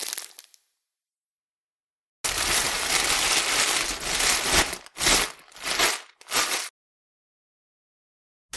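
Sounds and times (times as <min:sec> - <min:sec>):
plastic bag being crumpled and rustling: 0:02.3 - 0:06.7.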